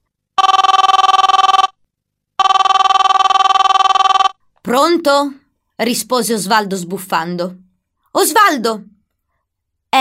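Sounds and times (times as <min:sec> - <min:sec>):
mobile phone ringing with a pulsing electronic trill: 0:00.4 - 0:01.8, 0:02.4 - 0:04.4
speech: 0:04.7 - 0:07.6, 0:08.2 - 0:08.9.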